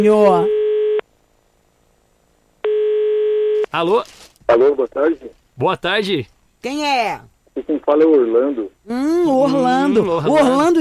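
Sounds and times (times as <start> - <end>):
speech: 0.0 - 0.6, 3.7 - 10.7
telephone line tone while an international call is placed: 0.4 - 1.0, 2.6 - 3.7.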